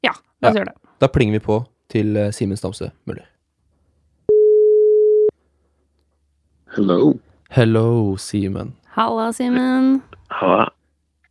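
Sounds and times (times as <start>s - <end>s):
speech: 0.0s - 3.3s, 6.7s - 10.8s
telephone ringback tone while calling: 4.3s - 5.3s.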